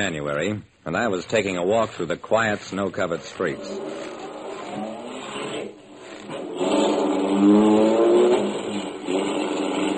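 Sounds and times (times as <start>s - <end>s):
speech: 0.0s - 4.1s
car engine revving and accelerating: 3.4s - 9.9s.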